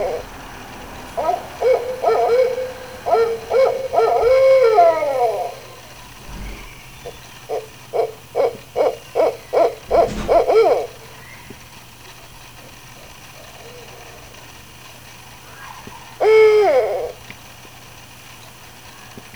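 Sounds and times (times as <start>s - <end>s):
barred owl calling: 0.0s - 11.5s, 15.4s - 17.5s.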